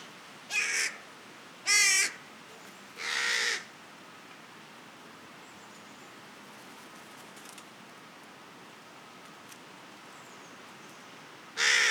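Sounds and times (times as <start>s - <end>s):
carrion crow Corvus corone cawing: 0.5s - 1.0s, 1.7s - 2.2s, 3.0s - 3.7s, 11.6s - 11.8s.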